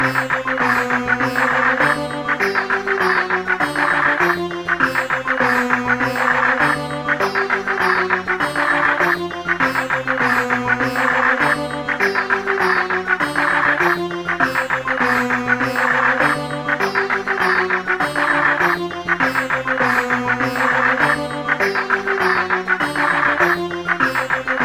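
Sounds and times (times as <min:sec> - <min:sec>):
sitar knock ringtone: 0:00.0 - 0:24.6.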